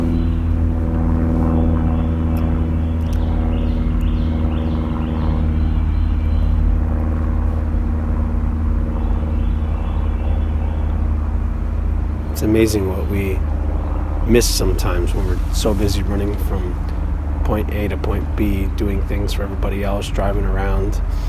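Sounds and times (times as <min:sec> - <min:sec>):
airplane flying overhead above a forest: 0:00.0 - 0:21.2
speech: 0:12.6 - 0:13.5, 0:14.3 - 0:21.2.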